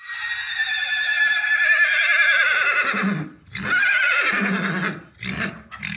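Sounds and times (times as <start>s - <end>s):
horse whinnying: 0.0s - 5.9s
horse snorting: 3.0s - 5.9s.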